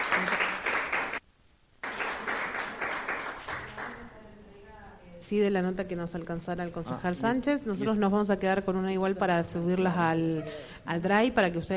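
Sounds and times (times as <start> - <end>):
audience applauding: 0.0 - 1.2, 1.8 - 4.1
speech: 5.3 - 11.7.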